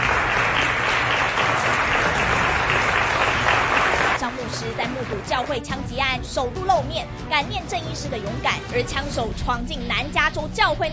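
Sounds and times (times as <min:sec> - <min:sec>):
standing ovation from an audience at a talk: 0:00.0 - 0:05.6
speech: 0:05.4 - 0:10.9.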